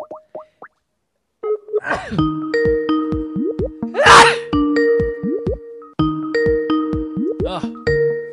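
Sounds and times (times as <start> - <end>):
bouncy plinking electronic tones: 1.4 - 8.3
sharp breathy sneeze: 1.8 - 2.2, 4.0 - 4.5
speech: 1.9 - 2.4.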